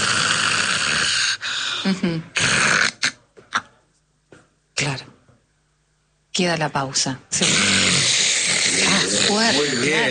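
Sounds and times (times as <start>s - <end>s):
person imitating loud raspy snoring with apnea: 0.0s - 3.2s, 7.4s - 10.0s
speech: 1.8s - 2.4s, 6.4s - 8.2s, 8.9s - 10.0s.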